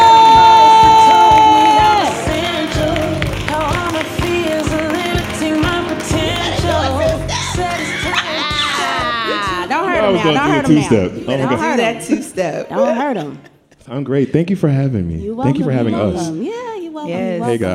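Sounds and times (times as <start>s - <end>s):
crowd cheering and whooping loudly: 0.0s - 9.8s
upbeat music with a steady thumping beat: 0.0s - 13.4s, 14.6s - 17.7s
laughter: 6.1s - 12.3s
speech: 10.7s - 17.7s.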